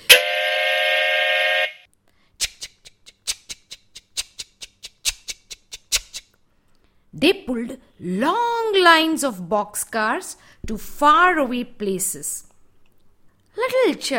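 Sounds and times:
train whistle: 0.0 - 1.8
speech: 7.2 - 12.4, 13.9 - 14.1.

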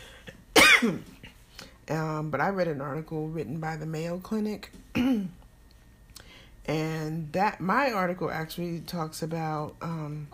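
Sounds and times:
throat-clearing cough caused by a tickle in the throat: 0.0 - 1.2, 4.9 - 5.4
speech: 0.8 - 1.2, 1.9 - 5.4, 6.6 - 10.3.

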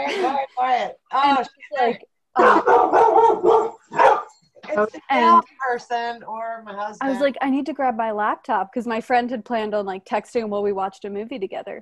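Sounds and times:
speech: 0.0 - 3.2, 4.8 - 11.7
puppy barking: 2.4 - 4.4.

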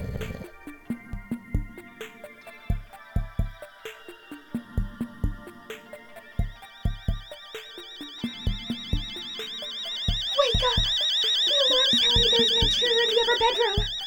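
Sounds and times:
heavy rhythmic thumps: 0.0 - 3.6, 6.4 - 7.4, 8.1 - 14.0
home security alarm wailing with a warbling electronic tone: 6.4 - 14.0.

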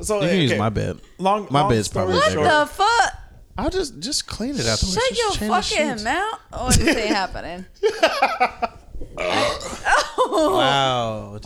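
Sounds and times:
laughter: 0.0 - 2.7, 6.6 - 11.4
speech: 0.0 - 9.6, 10.4 - 11.4
long loud gurgling burp: 9.2 - 10.0.

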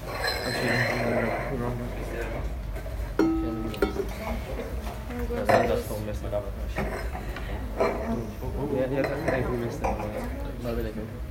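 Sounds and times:
murmur of several people talking: 0.0 - 11.3
wine glasses clinking as people grab them: 3.2 - 4.3.

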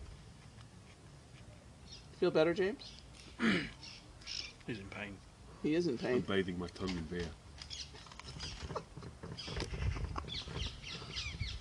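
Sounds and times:
speech: 2.2 - 3.9, 4.7 - 7.4
ringneck parakeets calling in harsh chirps and squawks: 2.8 - 4.6, 10.3 - 11.5.

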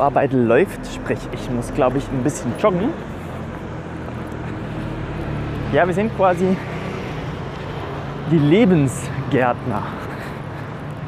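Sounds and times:
speech: 0.0 - 3.2, 5.7 - 6.8, 8.3 - 10.0
rumble of traffic with cars driving past: 0.0 - 11.0.

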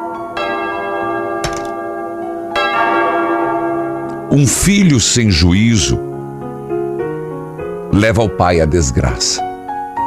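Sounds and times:
church bell rung by the sacristan: 0.0 - 6.4
speech: 4.4 - 6.2, 8.0 - 9.5.

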